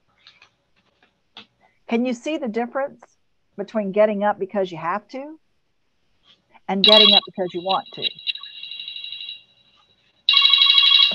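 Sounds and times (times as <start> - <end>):
speech: 1.9 - 5.4, 6.7 - 8.2
telephone ringing with a trilling electronic bell: 6.8 - 9.4, 10.3 - 11.1.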